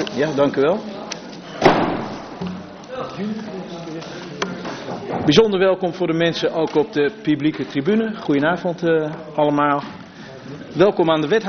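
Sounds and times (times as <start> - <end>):
low murmuring voices in a large room: 0.0 - 11.4
speech: 0.2 - 0.9, 3.2 - 4.2, 4.9 - 11.4
heavy door being shut: 1.6 - 2.7.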